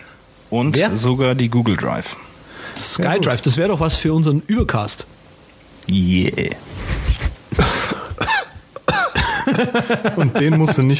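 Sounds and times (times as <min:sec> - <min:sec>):
speech: 0:00.5 - 0:05.2, 0:05.8 - 0:06.9, 0:09.5 - 0:10.9
harsh throaty raspy coughs: 0:07.5 - 0:09.6
laughter: 0:09.2 - 0:10.9.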